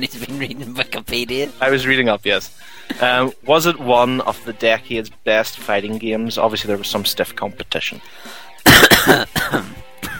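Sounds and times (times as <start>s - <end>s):
speech: 0.0s - 9.9s
loud harsh coughing fit: 8.6s - 10.1s.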